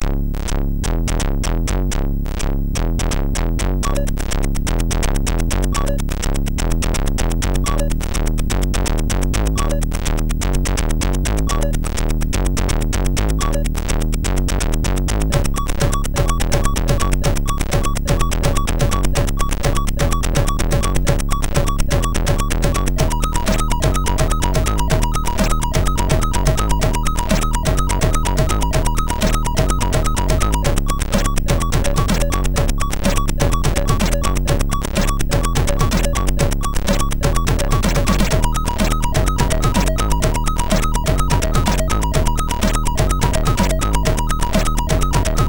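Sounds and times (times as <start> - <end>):
beat on MOS 6581 sound chip: 0.4 - 45.4.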